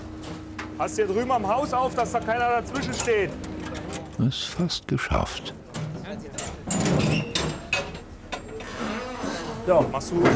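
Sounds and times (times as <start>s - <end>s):
speech: 0.8s - 3.5s, 4.2s - 7.3s, 9.6s - 10.3s
doors being opened with clunks and clicks: 2.0s - 4.3s, 5.5s - 10.3s.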